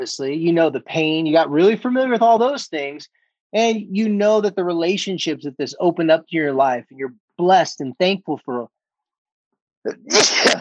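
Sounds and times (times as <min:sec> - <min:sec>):
speech: 0:00.0 - 0:08.8, 0:09.8 - 0:10.5
sneeze: 0:10.0 - 0:10.5.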